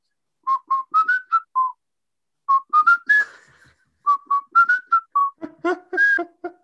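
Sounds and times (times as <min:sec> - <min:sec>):
person whistling a bouncy upbeat ska melody: 0:00.4 - 0:01.8, 0:02.5 - 0:06.2.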